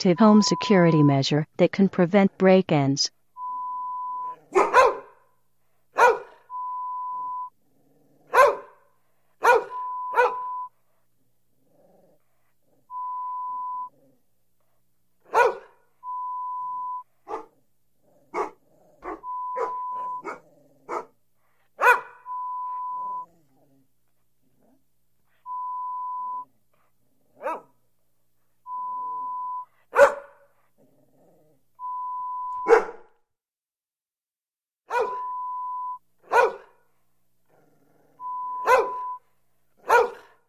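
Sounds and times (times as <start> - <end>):
speech: 0.0 - 3.2
short steady electronic beep tones: 0.0 - 4.4, 6.5 - 7.5, 12.9 - 13.9, 16.0 - 17.0, 19.2 - 20.2, 22.3 - 23.3, 25.5 - 26.4, 28.7 - 29.7, 31.8 - 32.7, 35.1 - 36.0, 38.2 - 39.2
dogs barking for a home-security deterrent recording: 4.4 - 5.3, 5.9 - 6.4, 8.3 - 10.5, 15.3 - 15.8, 17.2 - 17.6, 18.3 - 21.2, 21.8 - 22.3, 27.4 - 27.8, 29.9 - 30.5, 32.6 - 33.1, 34.9 - 35.3, 36.2 - 36.8, 38.6 - 39.2, 39.8 - 40.4.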